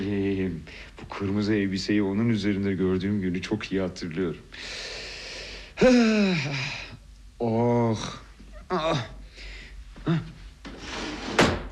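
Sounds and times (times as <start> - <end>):
speech: 0.6 - 4.9, 5.8 - 9.2, 10.0 - 10.4
underwear drawer sliding open: 10.8 - 11.7.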